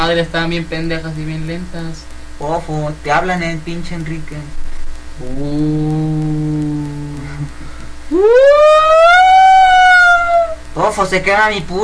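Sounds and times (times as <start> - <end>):
speech: 0.1 - 4.6, 5.2 - 8.8, 10.8 - 11.8
ambulance siren wailing: 8.1 - 10.6.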